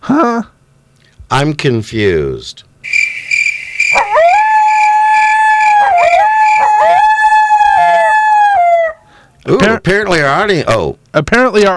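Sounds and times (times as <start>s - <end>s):
speech: 0.1s - 0.5s, 1.3s - 3.0s, 9.5s - 11.7s
insect-like buzz: 2.8s - 6.8s
coyote howling: 2.8s - 9.1s.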